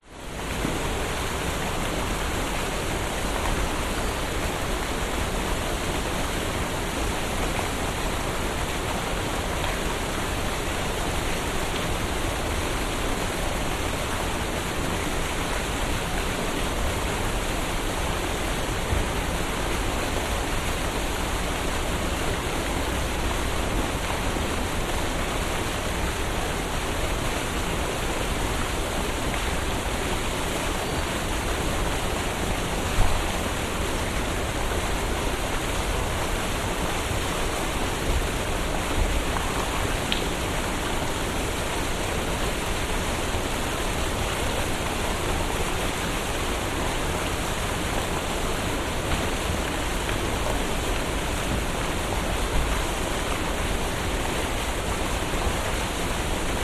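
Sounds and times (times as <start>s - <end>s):
water fountain on a city street at night in Brisbane: 0.0s - 56.6s.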